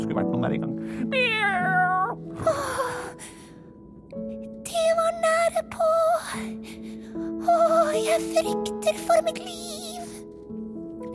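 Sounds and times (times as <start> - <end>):
speech: 0.1 - 1.8, 5.1 - 9.8
cat meowing: 1.1 - 2.2.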